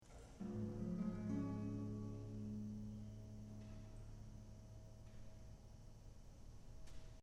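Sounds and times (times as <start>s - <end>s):
strummed C sharp chord: 0.4s - 6.0s.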